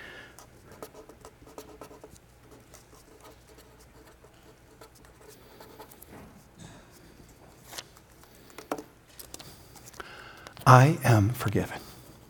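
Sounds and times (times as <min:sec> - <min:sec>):
pen scratching across a small sticky note: 0:00.5 - 0:06.1
taps and rustles: 0:05.9 - 0:10.6
speech: 0:10.7 - 0:11.8.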